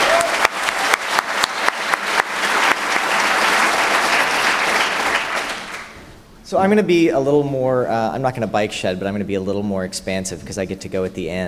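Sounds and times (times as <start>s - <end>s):
large crowd applause: 0.0s - 6.0s
speech: 6.5s - 11.4s.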